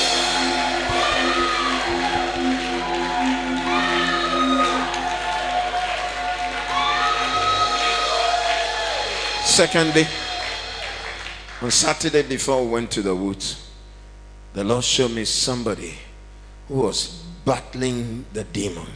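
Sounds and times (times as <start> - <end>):
large audience shouting and cheering in a big room: 0.0 - 11.7
audience clapping: 0.0 - 12.2
speech: 9.6 - 10.2, 11.6 - 13.7, 14.6 - 16.1, 16.7 - 18.9.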